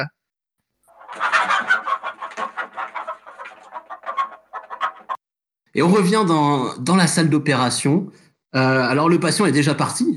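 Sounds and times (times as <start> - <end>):
hen clucking: 0.9 - 5.2
speech: 5.8 - 10.1.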